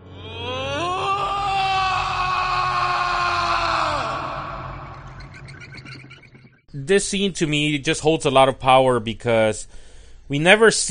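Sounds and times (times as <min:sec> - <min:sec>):
man screaming in anger: 0:00.1 - 0:04.9
speech: 0:06.9 - 0:10.8.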